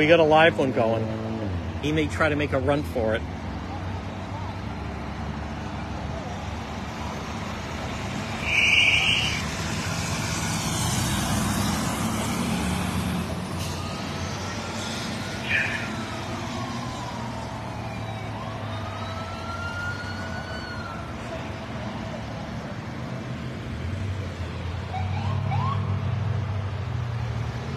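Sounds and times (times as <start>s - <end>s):
speech: 0.0s - 1.2s, 1.8s - 3.4s
steady rumble of engine and traffic noise: 0.0s - 27.7s
fire truck siren wailing in slow rising and falling sweeps: 3.5s - 22.7s, 24.7s - 26.2s.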